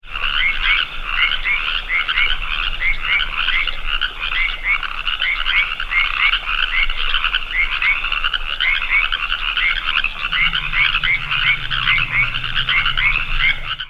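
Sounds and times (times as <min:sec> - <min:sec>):
California treefrog chorus: 0:00.0 - 0:13.8
low rumble: 0:09.3 - 0:13.8.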